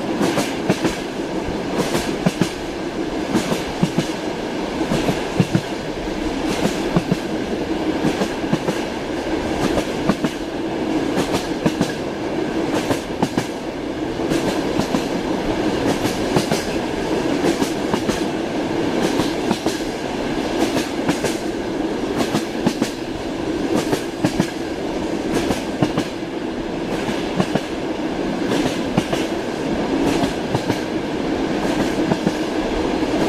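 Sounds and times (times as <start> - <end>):
train rolling along with steady dense rumble and hiss: 0.0 - 33.2.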